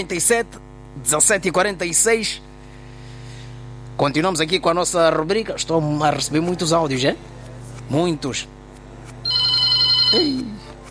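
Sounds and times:
speech: 0:00.0 - 0:02.5, 0:04.0 - 0:08.6, 0:10.1 - 0:10.6
telephone ringing with an incoming call: 0:09.2 - 0:10.6.

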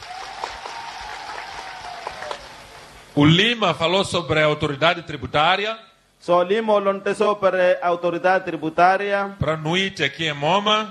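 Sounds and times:
audience applauding at a public gathering: 0:00.0 - 0:03.2
speech: 0:03.2 - 0:10.8.

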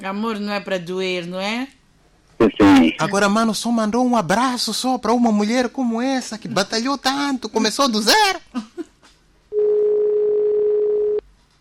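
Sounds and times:
speech: 0:00.0 - 0:01.8, 0:02.4 - 0:08.8
dial tone after a radio phone-in call drops: 0:09.6 - 0:11.2.

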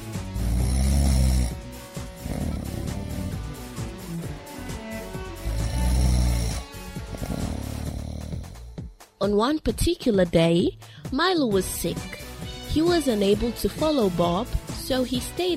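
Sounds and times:
soft raspy breathing: 0:00.0 - 0:08.8
loud rumbling snores: 0:00.0 - 0:08.9
speech: 0:09.2 - 0:15.5.

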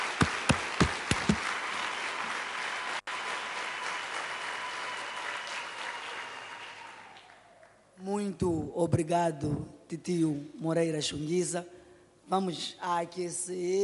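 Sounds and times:
audience applauding: 0:00.0 - 0:07.8
speech: 0:08.1 - 0:13.8.

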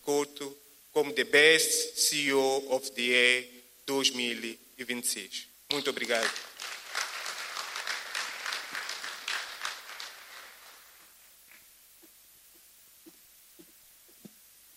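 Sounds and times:
speech: 0:01.0 - 0:06.5
crowd applauding loudly: 0:05.9 - 0:11.2.

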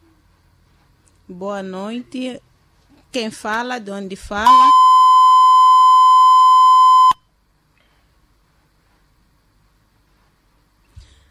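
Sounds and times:
speech: 0:01.3 - 0:02.5, 0:03.1 - 0:04.8
telephone line dropping with a disconnect beep: 0:04.5 - 0:07.2.

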